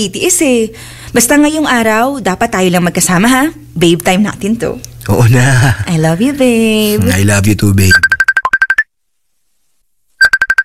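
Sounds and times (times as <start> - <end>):
speech: 0.0 - 8.2
mobile phone ringing with an incoming call: 7.9 - 8.9, 10.2 - 10.6.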